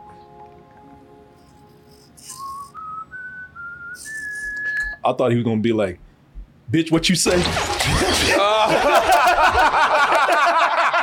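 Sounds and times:
person whistling a short melody: 2.2s - 5.0s
speech: 5.0s - 6.0s, 6.7s - 10.6s
laughter: 7.8s - 11.0s.

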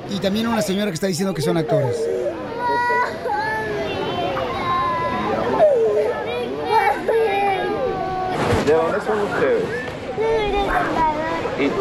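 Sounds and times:
speech: 0.1s - 3.5s, 8.7s - 11.0s, 11.6s - 11.7s
young children crying and sobbing in immigration detention: 1.4s - 8.5s, 10.1s - 11.6s.

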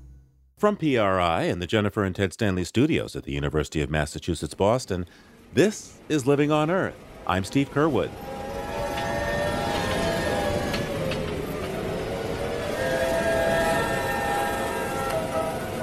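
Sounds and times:
speech: 0.6s - 8.3s
howling hurricane wind with shrill whistles: 6.0s - 15.8s.

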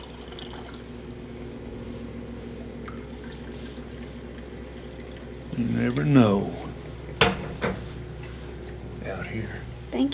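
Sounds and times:
faint drips and clinks: 0.0s - 1.4s, 2.5s - 7.3s
twice-boiled hot water pouring into a cup for tea: 0.0s - 8.7s
low hum: 0.0s - 10.1s
speech: 5.6s - 6.6s, 9.3s - 10.1s.

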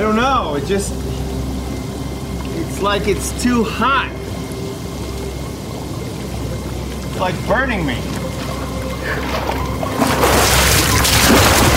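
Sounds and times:
faint tonal hum: 0.0s - 11.7s
speech: 0.4s - 1.3s, 2.6s - 4.2s, 7.2s - 8.2s, 9.1s - 10.2s
water pouring: 6.0s - 11.7s.

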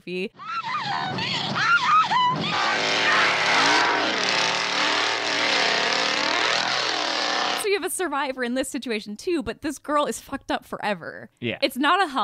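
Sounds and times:
speech: 0.0s - 3.1s, 7.8s - 12.2s
high wavering shrieks: 0.4s - 7.6s
pickup truck engine roaring and revving: 1.2s - 7.6s.

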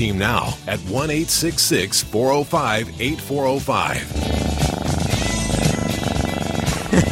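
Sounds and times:
speech: 0.0s - 4.7s
studio cat purring against a studio microphone: 4.0s - 7.0s.

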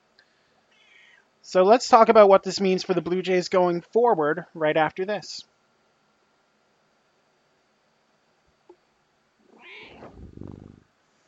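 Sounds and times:
studio air conditioning: 0.0s - 11.2s
speech: 1.5s - 5.5s
cat meowing in an air-conditioned studio: 9.5s - 10.5s
cat low rough trill: 9.5s - 10.8s.

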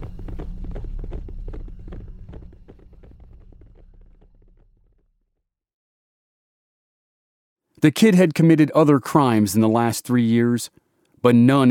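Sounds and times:
horse hooves galloping as a rider leaves town: 0.0s - 5.0s
low rumble: 0.0s - 5.4s
speech: 7.8s - 11.6s.

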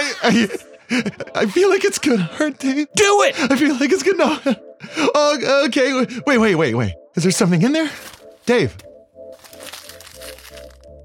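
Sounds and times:
speech: 0.2s - 8.8s
paper rustling and crinkling as it is pulled out of a box: 7.9s - 11.0s.

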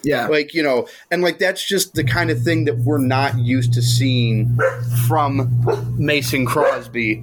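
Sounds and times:
speech: 0.0s - 7.2s
dog barking excitedly because people are home: 4.6s - 4.9s, 5.6s - 5.9s, 6.6s - 6.9s.

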